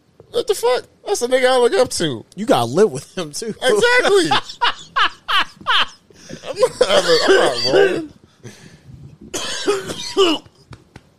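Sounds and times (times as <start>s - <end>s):
speech: 0.3s - 4.8s, 6.6s - 8.6s, 9.7s - 10.5s
laughter: 3.8s - 8.1s
harsh raspy smoker's cough: 9.3s - 10.6s.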